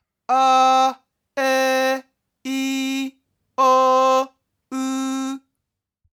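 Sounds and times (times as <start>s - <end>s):
chest voice singing with pitch intervals: 0.3s - 5.4s.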